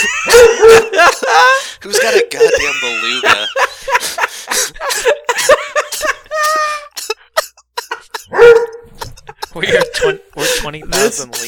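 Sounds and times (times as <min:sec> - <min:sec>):
dog barking and yipping: 0:00.0 - 0:01.1, 0:08.2 - 0:09.1
laughter: 0:00.0 - 0:11.4
speech: 0:10.8 - 0:11.4.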